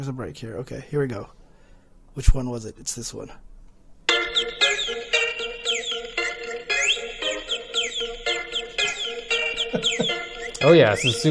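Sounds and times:
speech: 0.0s - 1.4s, 2.2s - 3.5s, 9.7s - 11.2s
bird chirping and warbling in rapid trills and sweeping whistles: 4.3s - 11.2s.

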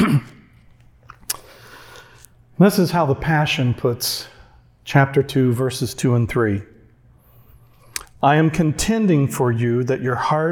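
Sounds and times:
throat clearing like a stifled cough: 0.0s - 0.6s
speech: 2.6s - 6.7s, 8.2s - 10.4s.

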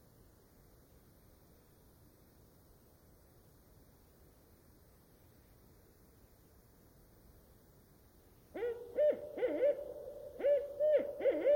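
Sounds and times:
barred owl hooting song in old-growth rain forest of the Queets river valley: 8.6s - 11.5s.

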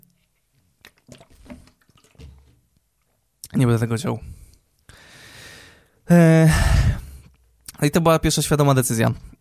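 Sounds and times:
clicks and clunks of handling the cup or bottle: 0.8s - 2.6s
person gulping water: 0.8s - 2.6s
water sloshing: 0.8s - 3.2s
speech: 3.6s - 4.4s, 6.1s - 6.6s, 7.8s - 9.3s.

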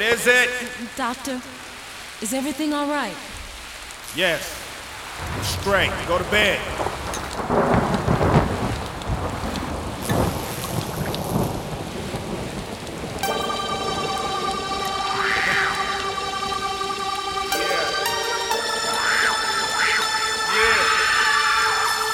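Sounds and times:
speech: 0.0s - 1.6s, 2.2s - 3.3s, 4.1s - 4.6s, 5.2s - 7.7s
steady rain: 0.0s - 22.1s
deep rolling thunder: 5.0s - 14.5s
sustained tonal drone of music: 13.2s - 22.1s.

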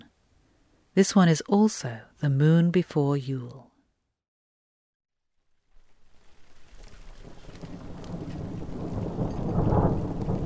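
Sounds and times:
speech: 1.0s - 3.7s
steady rain pattering in a thunderstorm: 5.3s - 10.4s
deep rumble of thunder: 5.8s - 10.4s.

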